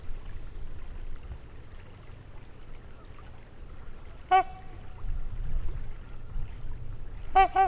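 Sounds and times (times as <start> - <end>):
trumpeter swan honking near a lake in Wisconsin: 4.2 - 4.9, 7.3 - 7.6.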